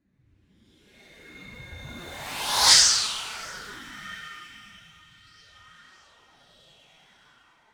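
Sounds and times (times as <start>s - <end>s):
fly-by whoosh: 1.7s - 4.8s.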